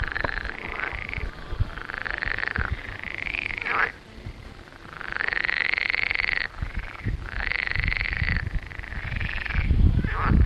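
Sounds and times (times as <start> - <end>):
loud frogs croaking in a garden: 0.0 - 10.4.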